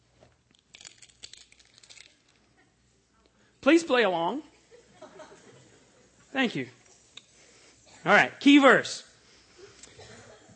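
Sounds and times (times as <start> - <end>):
many keys shaken by an audience during a Bible teaching: 0.5 - 2.4
speech: 3.6 - 4.5, 6.3 - 6.8, 8.0 - 9.1
laughter: 4.6 - 6.2.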